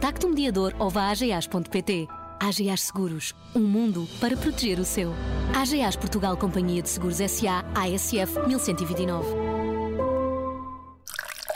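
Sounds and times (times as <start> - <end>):
speech: 0.0 - 9.5
water drip with a clear ringing tone: 11.0 - 11.5.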